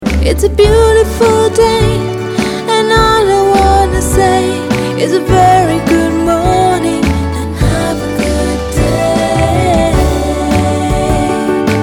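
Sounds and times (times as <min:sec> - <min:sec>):
woman singing an English song: 0:00.1 - 0:11.7.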